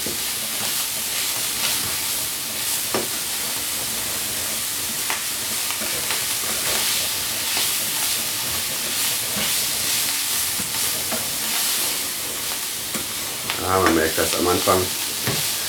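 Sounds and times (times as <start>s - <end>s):
food searing in a hot frying pan: 0.0s - 15.6s
speech: 13.8s - 15.0s.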